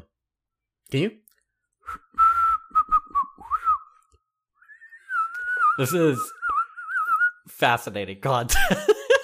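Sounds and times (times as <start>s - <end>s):
speech: 0.9s - 1.2s, 5.8s - 6.4s, 7.5s - 9.0s
person whistling a short breathy tune: 1.8s - 7.5s
laughter: 8.5s - 9.2s.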